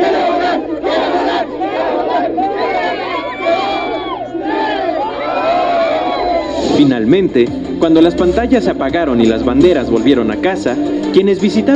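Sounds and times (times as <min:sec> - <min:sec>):
large crowd cheering and shouting in welcome: 0:00.0 - 0:07.3
speech: 0:06.8 - 0:11.7.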